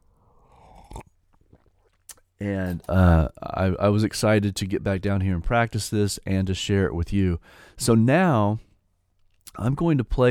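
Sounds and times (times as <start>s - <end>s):
swallow of coffee: 0.0s - 3.4s
slurping sip of coffee: 0.1s - 3.4s
speech: 2.4s - 8.7s, 9.5s - 10.2s.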